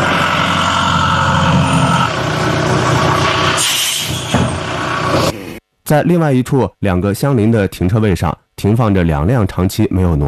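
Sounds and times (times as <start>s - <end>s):
tow truck engine rumbling while hauling away a car: 0.0s - 5.6s
speech: 5.9s - 10.2s.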